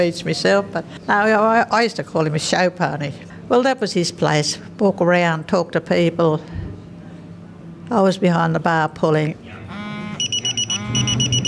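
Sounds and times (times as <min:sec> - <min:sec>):
speech: 0:00.0 - 0:06.6, 0:07.9 - 0:09.8
low hum: 0:00.0 - 0:11.4
shrill electronic buzzer in a pub signalling lunch: 0:09.7 - 0:11.4.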